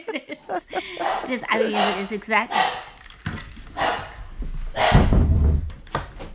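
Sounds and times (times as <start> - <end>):
laughter: 0.0 - 2.1
speech: 0.0 - 2.8
dog barking: 1.0 - 3.0, 3.8 - 5.1.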